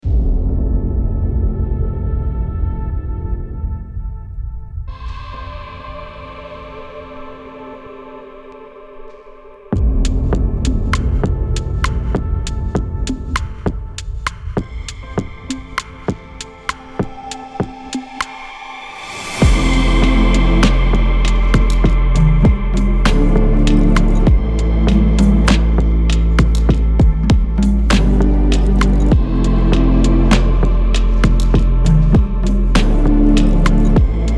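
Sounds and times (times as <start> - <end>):
slow motion fashion ambient music: 0.0 - 34.3.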